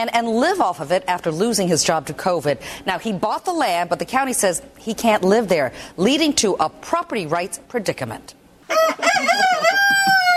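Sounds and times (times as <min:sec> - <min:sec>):
speech: 0:00.0 - 0:10.0
rooster crowing on rural land in Polk County: 0:08.7 - 0:10.3.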